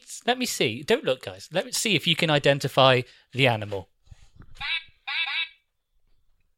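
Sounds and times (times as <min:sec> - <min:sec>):
speech: 0:00.2 - 0:03.9
buzzy synthetic duck quacks from an electronic keyboard sound effect: 0:04.6 - 0:05.6.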